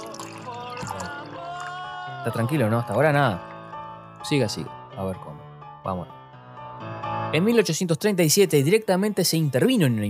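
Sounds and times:
water poured into a small glass: 0:00.0 - 0:04.6
speech: 0:02.2 - 0:03.5, 0:04.2 - 0:06.2, 0:07.3 - 0:10.0.

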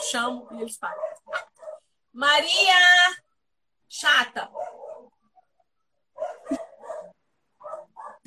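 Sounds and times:
several dogs barking in short bursts: 0:00.0 - 0:01.9, 0:04.4 - 0:08.2
speech: 0:00.1 - 0:01.2, 0:02.1 - 0:03.2, 0:03.9 - 0:04.8.

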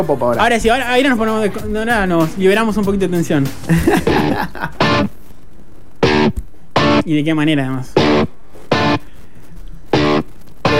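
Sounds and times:
speech: 0:00.0 - 0:04.8, 0:07.1 - 0:08.3
distorted electric guitar chords: 0:02.8 - 0:07.1, 0:07.9 - 0:10.7
laughter: 0:03.6 - 0:05.1.

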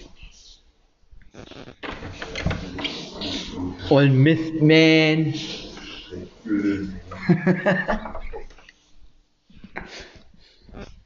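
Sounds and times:
steady room noise: 0:00.0 - 0:11.0
door opening with a short clatter and rattle: 0:01.8 - 0:03.3
faint voices: 0:01.8 - 0:07.3
laughter: 0:02.8 - 0:08.6
speech: 0:03.9 - 0:05.6, 0:06.5 - 0:08.2.

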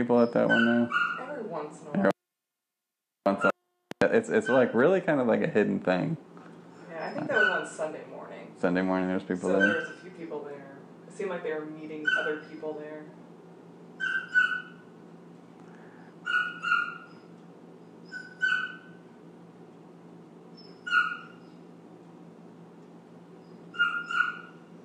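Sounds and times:
speech: 0:00.0 - 0:02.2, 0:03.4 - 0:06.3, 0:07.0 - 0:13.2
steady low hum: 0:00.0 - 0:02.2, 0:03.3 - 0:24.8
dog whimpering and yipping: 0:00.2 - 0:01.3, 0:07.0 - 0:07.7, 0:09.4 - 0:10.0, 0:12.0 - 0:12.4, 0:14.0 - 0:14.8, 0:16.3 - 0:17.3, 0:18.0 - 0:19.0, 0:20.6 - 0:21.6, 0:23.4 - 0:24.6.

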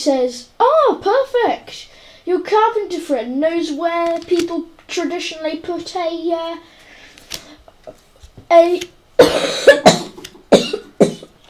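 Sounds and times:
speech: 0:00.0 - 0:06.8, 0:07.9 - 0:10.0
person coughing with a worsening cough: 0:09.2 - 0:11.4.

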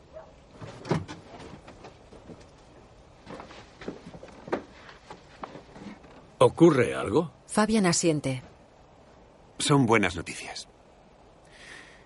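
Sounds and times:
house door being opened at night: 0:00.6 - 0:02.0
speech: 0:06.4 - 0:08.5, 0:09.6 - 0:10.7.

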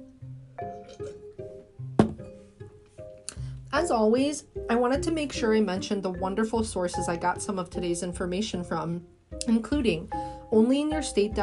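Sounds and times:
light plucky music: 0:00.0 - 0:11.4
glasses clinking in a toast: 0:00.6 - 0:01.4
speech: 0:03.8 - 0:11.4.

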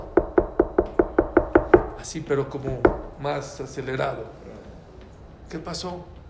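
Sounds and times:
sharp knocks on a door: 0:00.0 - 0:02.0, 0:02.6 - 0:03.2
speech: 0:02.0 - 0:04.4, 0:05.5 - 0:06.2.

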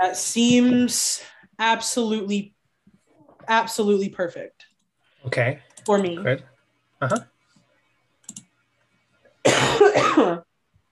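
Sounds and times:
speech: 0:00.0 - 0:02.6, 0:03.5 - 0:07.3, 0:09.8 - 0:10.5
person coughing: 0:09.4 - 0:10.4.

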